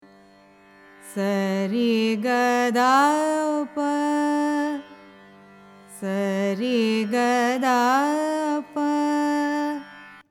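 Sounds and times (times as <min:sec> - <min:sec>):
carnatic music: 0:00.0 - 0:10.2.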